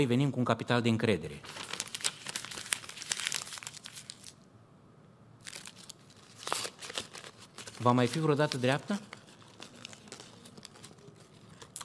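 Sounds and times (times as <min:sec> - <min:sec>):
speech: 0:00.0 - 0:01.8, 0:07.8 - 0:09.2
sheet of paper being crumpled: 0:01.4 - 0:04.4, 0:05.4 - 0:11.8.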